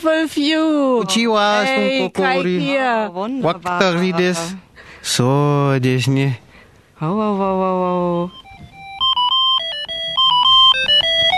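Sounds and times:
speech: 0.0 - 6.4, 7.0 - 8.4
mobile phone ringtone with electronic beeping melody: 8.2 - 11.3.

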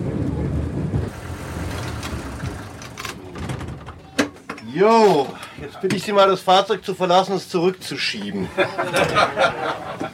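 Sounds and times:
rail bus engine rumbling: 0.0 - 4.6
mechanical clicks and brief rattles: 1.7 - 4.0
speech: 4.8 - 10.1
laughter: 8.2 - 10.1.

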